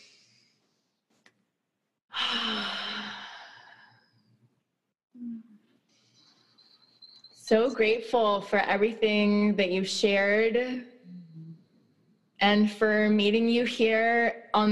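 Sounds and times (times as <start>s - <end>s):
group taking a deep breath in together during a guided moment: 2.1s - 4.0s
speech: 7.5s - 10.9s, 12.4s - 14.6s.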